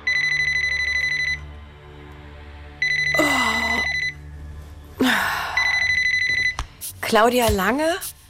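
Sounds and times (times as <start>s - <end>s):
mobile phone ringing electronically: 0.0s - 1.5s, 2.8s - 3.2s, 3.8s - 4.2s, 5.6s - 6.6s
person gasping: 3.2s - 4.0s, 5.0s - 5.8s
speech: 7.1s - 8.2s.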